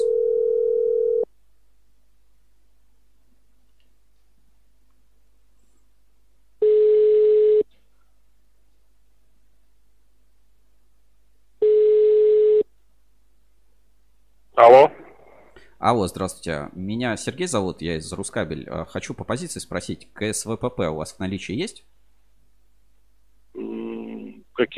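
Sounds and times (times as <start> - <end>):
low-pitched ringback tone of an outgoing telephone call to a cable supplier: 0.0 - 1.3, 6.6 - 7.6, 11.6 - 12.6
speech: 15.8 - 22.0.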